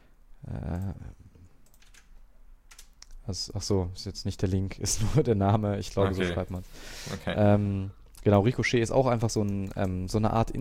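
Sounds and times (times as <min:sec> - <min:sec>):
computer keyboard clicks while pasting text: 0:01.6 - 0:03.2
speech: 0:03.3 - 0:10.6.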